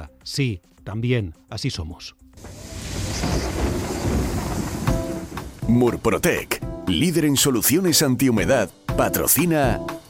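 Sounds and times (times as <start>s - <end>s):
speech: 0.2s - 2.6s, 3.2s - 4.5s, 5.7s - 10.0s
steady rain: 2.4s - 6.5s
rolling thunder rumble: 2.4s - 6.9s.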